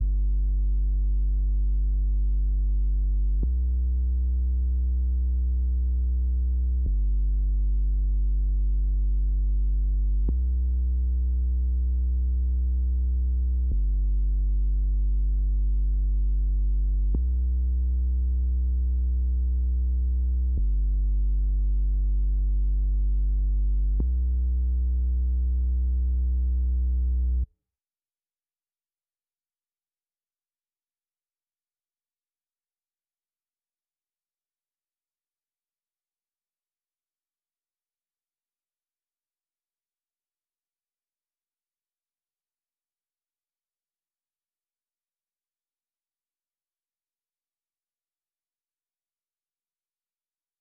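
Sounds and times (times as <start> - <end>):
sub bass melody loop: 0.0 - 27.5.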